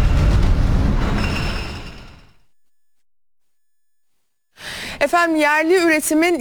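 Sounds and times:
electric train rumbling past: 0.0 - 2.4
speech: 5.1 - 6.3.

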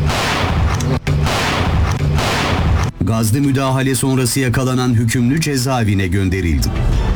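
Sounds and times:
gunfire from a house where a convict is hiding: 0.0 - 3.0
speech: 3.0 - 7.0.

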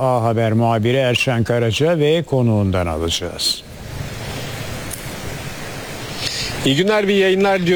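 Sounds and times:
speech: 0.0 - 3.8, 6.6 - 7.7
strong wind on the seashore at Çengelköy in Istanbul: 3.6 - 7.7.

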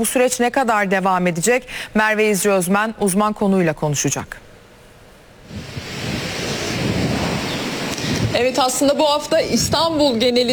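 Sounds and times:
speech: 0.0 - 4.5, 8.4 - 10.5
low buffeting rumbles: 5.0 - 10.5
strong wind roaring across an open microphone outdoors: 5.4 - 10.5.

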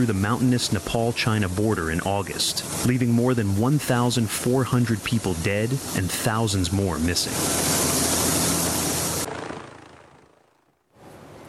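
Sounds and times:
speech: 0.0 - 7.8
army helicopter rotor thrum in Nepal: 0.0 - 10.6.

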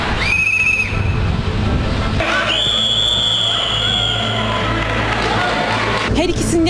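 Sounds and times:
loud traffic or crowd rumble: 0.0 - 6.6
shrill whistle blasts: 0.2 - 1.2, 2.4 - 4.6.

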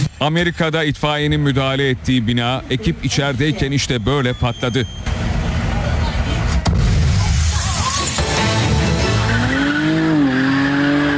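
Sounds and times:
speech: 0.2 - 5.3
car tires squealing while drifting on a road: 3.1 - 11.1
car engine roaring: 5.1 - 11.1.

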